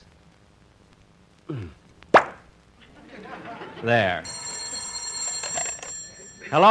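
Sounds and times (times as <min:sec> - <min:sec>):
cork popping from a brandy bottle being uncorked: 0:02.1 - 0:02.5
laughter: 0:02.8 - 0:06.6
speech: 0:03.8 - 0:04.4, 0:06.5 - 0:06.7.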